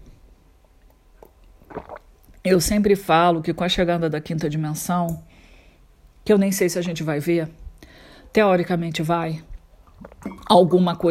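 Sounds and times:
person drinking water: 0.7s - 2.4s, 9.8s - 10.5s
soft wet gulps of swallowing water: 1.0s - 2.4s, 9.6s - 10.6s
speech: 2.4s - 5.3s, 6.3s - 7.6s, 8.3s - 11.0s.

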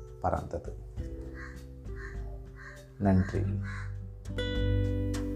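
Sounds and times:
speech: 0.2s - 1.2s, 3.0s - 5.0s
crow cawing: 1.2s - 4.1s.

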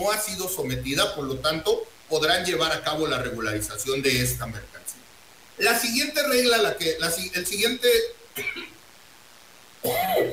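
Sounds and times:
speech: 0.0s - 5.0s, 5.6s - 8.8s, 9.8s - 10.3s
person coughing: 8.4s - 8.8s, 9.8s - 10.3s.

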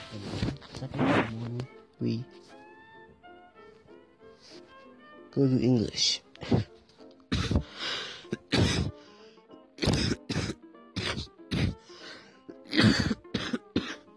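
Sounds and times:
speech: 0.1s - 2.3s, 5.4s - 6.7s
throat clearing: 7.3s - 7.7s, 8.3s - 9.0s, 9.8s - 11.8s, 12.5s - 14.0s
person coughing: 7.3s - 9.0s, 9.8s - 11.8s, 12.5s - 14.0s.

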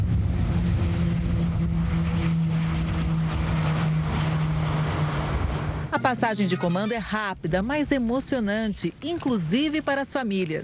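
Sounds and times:
Embraer A-29 aerobatic airplane engines droning overhead: 0.0s - 8.0s
speech: 6.0s - 10.6s.

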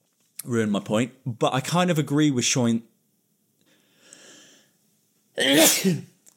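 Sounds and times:
speech: 0.4s - 2.9s, 5.4s - 6.1s
person sneezing: 5.4s - 6.2s.

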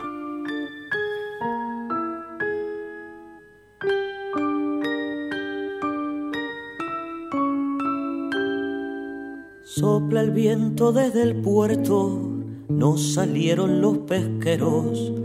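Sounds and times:
instrumental song intro of bright bell-like struck notes and chords: 0.0s - 10.8s
speech: 9.8s - 15.2s.

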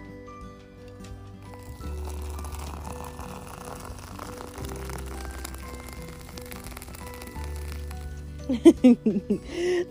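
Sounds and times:
coffee pouring into a mug: 1.0s - 8.6s
laughter: 8.5s - 9.4s
speech: 8.5s - 9.9s.

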